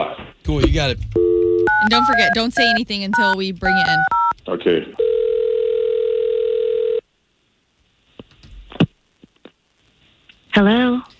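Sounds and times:
speech: 0:00.5 - 0:05.0
short clicks and beeps of a number being dialed: 0:01.2 - 0:04.4
steady telephone dial tone: 0:05.0 - 0:07.0.

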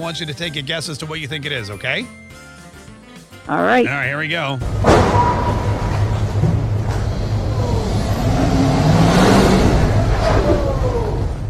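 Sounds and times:
speech: 0:00.0 - 0:02.5, 0:03.5 - 0:05.7
car crashing into parked motorcade: 0:04.6 - 0:07.1
loud continuous engine roar: 0:05.7 - 0:11.4.

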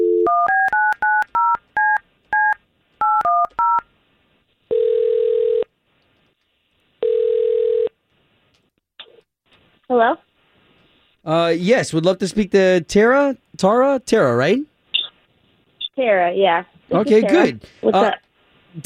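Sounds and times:
long steady telephone ringback tones: 0:00.0 - 0:01.6, 0:04.7 - 0:05.6, 0:07.0 - 0:07.9
touch-tone phone dialing beeps: 0:00.0 - 0:03.8
speech: 0:09.9 - 0:10.3, 0:11.2 - 0:14.7, 0:16.0 - 0:18.2.

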